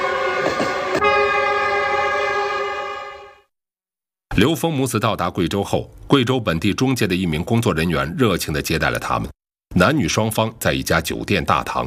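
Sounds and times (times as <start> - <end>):
horn blast of a train travelling to Guizhou, China: 0.0 - 3.4
speech: 4.4 - 11.8.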